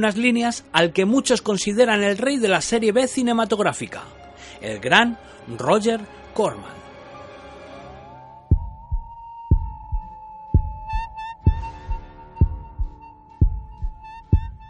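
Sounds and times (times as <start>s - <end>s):
speech: 0.0s - 6.8s
human heartbeat in low double beats: 8.5s - 14.6s
shimmer of high whistling tones: 8.5s - 14.6s.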